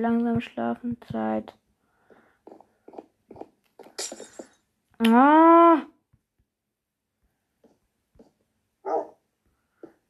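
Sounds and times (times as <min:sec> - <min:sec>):
speech: 0:00.0 - 0:01.6, 0:05.0 - 0:05.9
dog barking: 0:08.8 - 0:09.2.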